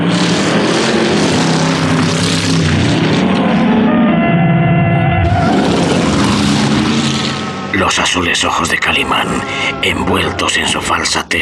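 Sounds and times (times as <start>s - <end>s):
eight-cylinder car and single-cylinder vehicle engines roaring in a high-speed chase: 0.0s - 11.3s
speech: 8.2s - 11.3s.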